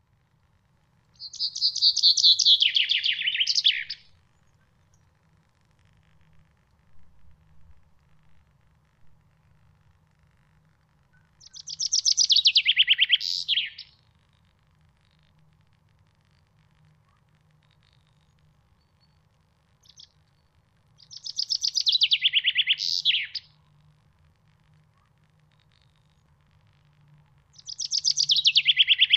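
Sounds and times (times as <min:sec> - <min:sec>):
chaffinch singing: 0:01.2 - 0:05.2, 0:11.2 - 0:14.0, 0:17.8 - 0:23.7, 0:27.5 - 0:29.1.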